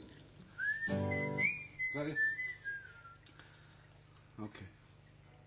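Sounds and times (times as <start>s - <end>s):
person whistling a short tune: 0.6s - 3.2s
speech: 2.0s - 2.4s.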